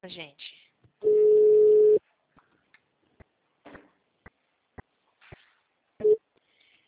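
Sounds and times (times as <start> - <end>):
telephone tone after a dropped call: 1.0 - 2.0.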